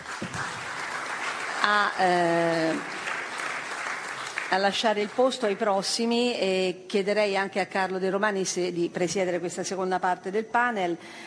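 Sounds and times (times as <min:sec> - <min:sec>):
audience applauding guests of a panel session: 0:00.0 - 0:05.7
speech: 0:01.6 - 0:03.0, 0:04.5 - 0:11.2.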